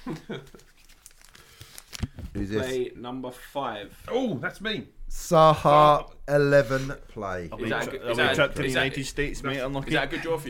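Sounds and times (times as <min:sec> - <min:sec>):
speech: 0:00.0 - 0:00.8, 0:02.4 - 0:10.4
paper slips for a draw rustling and crinkling as they are mixed: 0:00.1 - 0:02.3.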